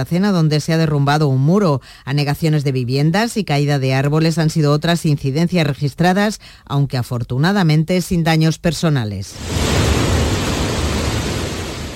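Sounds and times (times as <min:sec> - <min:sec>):
speech: 0:00.0 - 0:10.0
roar of water falling inside a cave shaft: 0:09.4 - 0:11.9.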